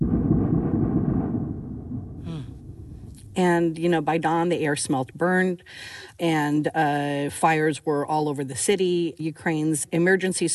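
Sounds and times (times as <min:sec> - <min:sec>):
loud deep explosion from strikes on Kyiv Ukraine: 0:00.0 - 0:03.6
speech: 0:03.4 - 0:10.5.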